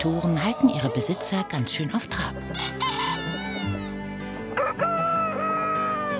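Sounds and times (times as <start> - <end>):
speech: 0.0 - 3.0
rooster crowing: 2.5 - 4.0, 4.6 - 6.1.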